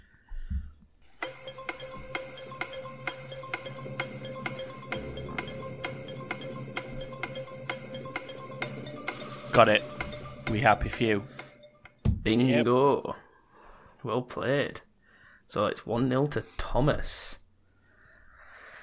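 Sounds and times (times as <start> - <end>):
sustained musical bed: 1.0 - 12.8
countdown clock timing a letter-jumble quiz round ticking: 1.2 - 12.6
speech: 9.6 - 9.9, 10.5 - 11.4, 12.2 - 13.2, 14.0 - 14.9, 15.5 - 17.4.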